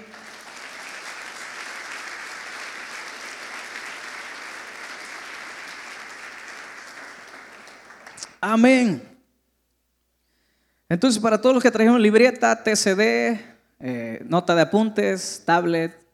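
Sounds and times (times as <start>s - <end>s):
audience applauding after a short prayer: 0.0s - 8.4s
speech: 8.4s - 9.1s, 10.9s - 16.0s.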